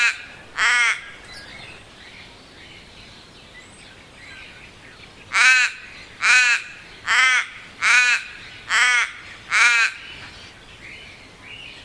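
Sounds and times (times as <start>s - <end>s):
crow giving loud harsh rasping caws: 0.0s - 1.2s, 5.3s - 10.0s.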